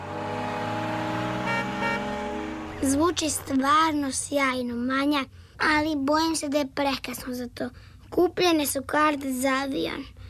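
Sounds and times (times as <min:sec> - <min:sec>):
car engine running as the vehicle drives off: 0:00.0 - 0:04.2
speech: 0:02.8 - 0:10.2.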